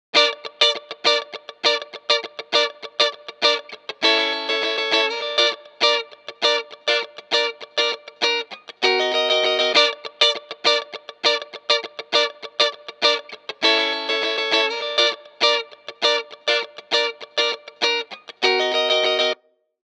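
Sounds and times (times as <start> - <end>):
funk guitar through Moog multimode filter: 0.1 - 19.4.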